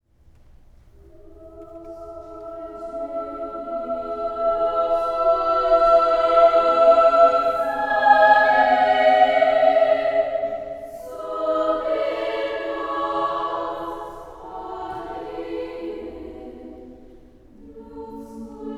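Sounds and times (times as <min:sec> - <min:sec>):
children's choir singing: 0:01.0 - 0:18.7.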